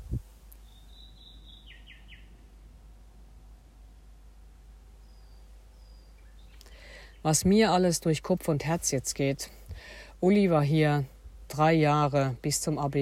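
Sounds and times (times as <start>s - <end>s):
nightingale singing: 0.0s - 2.7s, 5.0s - 7.5s
speech: 7.2s - 13.0s.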